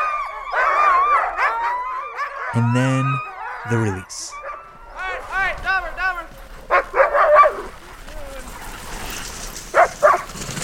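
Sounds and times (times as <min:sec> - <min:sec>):
excited sled dogs barking on a guy line: 0:00.0 - 0:02.5, 0:04.3 - 0:05.0, 0:06.7 - 0:07.7, 0:09.7 - 0:10.3
speech: 0:02.5 - 0:04.4.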